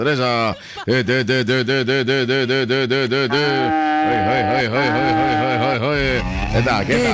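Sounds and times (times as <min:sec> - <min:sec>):
laughter: 0:00.0 - 0:07.1
large dairy cow mooing during hand milking: 0:03.3 - 0:06.8.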